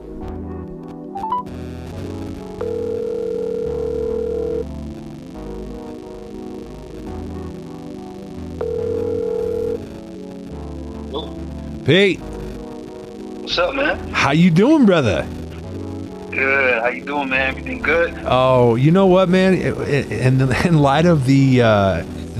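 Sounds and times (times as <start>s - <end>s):
phone call dialing tone: 2.6s - 4.7s, 8.6s - 9.8s
music bed: 4.9s - 22.3s
speech: 11.9s - 12.3s, 13.5s - 15.4s, 16.4s - 22.3s.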